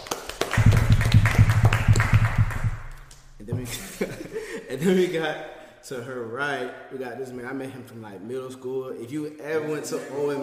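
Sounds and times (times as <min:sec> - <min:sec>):
steady rhythmic hand claps for a guest: 0:00.0 - 0:03.8
laughter: 0:03.5 - 0:04.8, 0:09.6 - 0:10.4
speech: 0:03.5 - 0:10.4.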